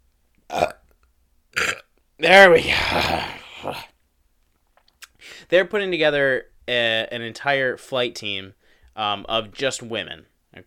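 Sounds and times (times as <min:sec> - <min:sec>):
short broad throaty burp: 0:00.5 - 0:02.0, 0:02.6 - 0:03.9
speech: 0:02.2 - 0:03.9, 0:05.4 - 0:10.6.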